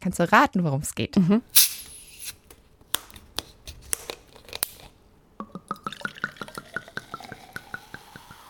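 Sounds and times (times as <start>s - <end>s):
speech: 0.0s - 1.8s
bottle opening with a short hiss: 1.5s - 2.5s, 7.0s - 8.4s
fizzy drink poured into a glass: 5.5s - 8.4s.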